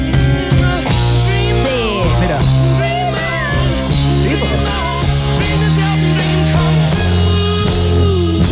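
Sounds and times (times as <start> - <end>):
1970s full-band rock song with high strained vocal: 0.0 - 8.5
driving guitars: 0.0 - 8.5
steady bass: 0.0 - 8.5
laughter: 1.5 - 7.2.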